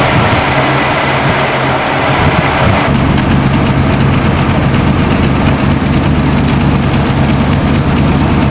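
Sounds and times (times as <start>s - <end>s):
V8 engine in a Mini, front twin: 0.0s - 8.4s.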